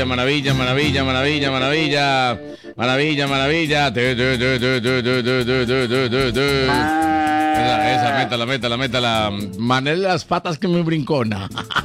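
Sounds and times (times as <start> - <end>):
speech: 0.0 - 11.8
cow mooing: 6.7 - 8.4.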